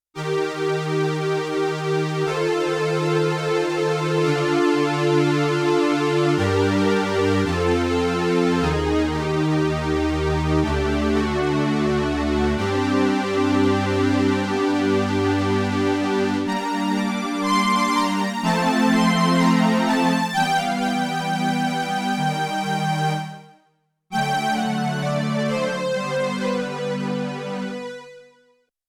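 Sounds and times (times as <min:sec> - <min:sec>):
Double String Prophet strings patch on Yamaha TX16W: 0:00.3 - 0:23.4, 0:24.2 - 0:28.0.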